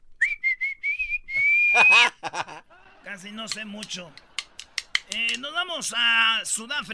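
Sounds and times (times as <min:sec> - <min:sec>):
human whistling used as a whistled language: 0:00.2 - 0:02.1
laughter: 0:01.7 - 0:05.4
speech: 0:03.2 - 0:04.3, 0:05.1 - 0:06.9.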